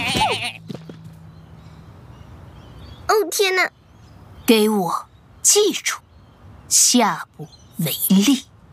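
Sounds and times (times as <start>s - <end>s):
young sheep bleating: 0.0s - 0.6s
speech: 3.3s - 3.8s, 4.5s - 6.0s, 6.7s - 8.5s.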